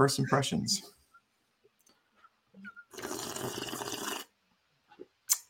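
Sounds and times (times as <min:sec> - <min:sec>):
speech: 0:00.0 - 0:01.0
loud wet slurping sips of coffee: 0:02.9 - 0:04.4.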